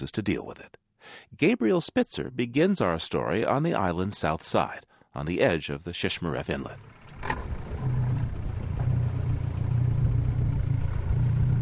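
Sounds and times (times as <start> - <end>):
speech: 0.0 - 7.6
outboard boat motor running and revving: 6.8 - 11.6.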